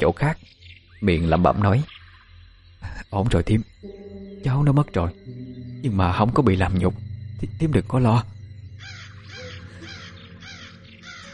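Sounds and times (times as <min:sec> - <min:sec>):
speech: 0:00.0 - 0:01.9, 0:02.9 - 0:08.4
low steady hum: 0:03.4 - 0:11.0
crows cawing in the sky: 0:08.8 - 0:11.3.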